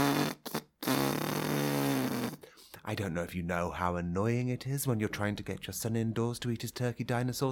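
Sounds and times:
person making a loud buzzing fart imitation: 0.0s - 2.5s
speech: 2.9s - 7.4s.

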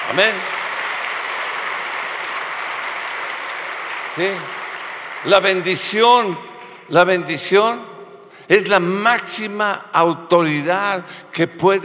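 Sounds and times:
congregation applauding: 0.0s - 6.9s
speech: 0.1s - 0.6s, 4.2s - 4.6s, 5.2s - 7.9s, 8.5s - 11.8s.

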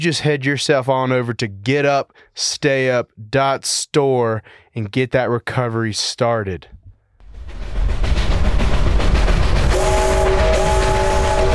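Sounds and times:
speech: 0.0s - 6.8s
train rumbling: 7.2s - 11.5s
sustained multi-tone train horn blast: 9.6s - 11.5s.

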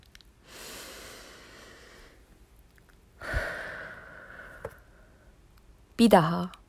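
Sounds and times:
deep inhale through nose: 0.4s - 2.2s, 3.2s - 5.2s
slow breathy exhale through mouth: 0.4s - 2.2s, 3.2s - 5.3s
speech: 6.0s - 6.6s.

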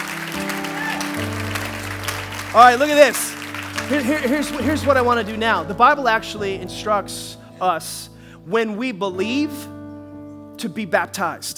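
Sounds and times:
audience applauding: 0.0s - 5.6s
speech: 2.5s - 3.3s, 3.9s - 9.8s, 10.6s - 11.5s.

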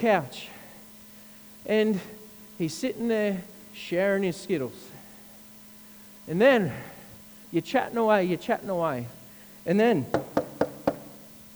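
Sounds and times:
speech: 0.0s - 0.6s, 1.6s - 4.9s, 6.3s - 6.9s, 7.5s - 10.3s
firm knocks on a door: 10.1s - 11.3s.

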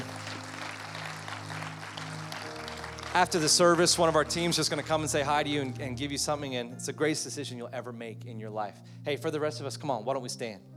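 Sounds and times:
crowd clapping in a large room: 0.0s - 5.7s
speech: 3.1s - 10.7s.

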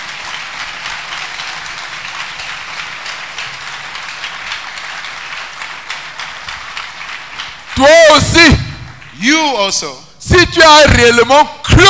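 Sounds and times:
large crowd applauding: 0.0s - 9.5s
speech: 7.8s - 8.6s, 9.2s - 11.8s.

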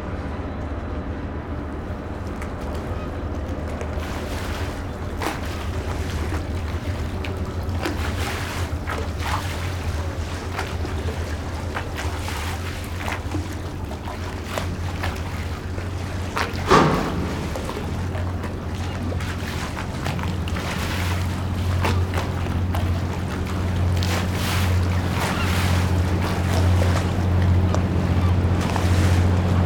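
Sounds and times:
low engine drone in a port town harbour: 0.0s - 29.6s
knocks and clatter in a port town harbour: 16.4s - 19.0s
sharp thump: 16.7s - 18.4s.

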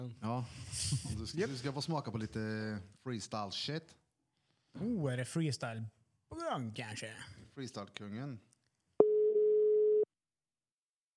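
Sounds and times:
speech: 0.1s - 4.0s, 4.8s - 8.5s
telephone ringing tone as a call is placed: 9.0s - 10.1s.

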